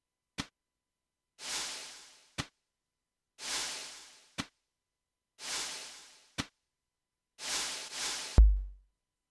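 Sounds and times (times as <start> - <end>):
slow drums: 1.4 - 2.5, 3.4 - 4.5, 5.4 - 6.5, 7.4 - 8.8.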